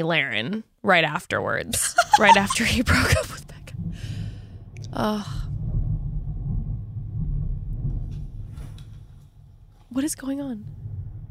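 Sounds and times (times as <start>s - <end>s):
speech: 0.0s - 3.3s, 4.9s - 5.4s, 10.0s - 10.8s
laughter: 1.7s - 3.3s
deep sustained thunder rumbling: 1.9s - 11.3s
faint higher crackles: 3.1s - 11.3s.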